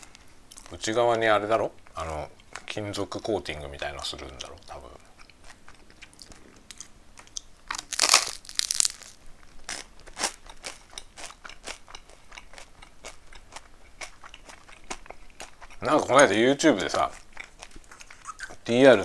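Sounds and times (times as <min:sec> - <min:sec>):
speech: 0:00.7 - 0:05.0, 0:15.8 - 0:17.2, 0:18.7 - 0:19.0
crunchy chewing of toasted bread: 0:05.0 - 0:16.2, 0:16.8 - 0:18.6.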